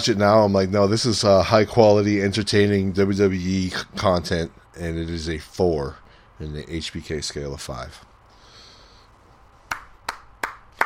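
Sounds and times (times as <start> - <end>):
speech: 0.0 - 8.1
sharp hand claps: 9.7 - 10.8.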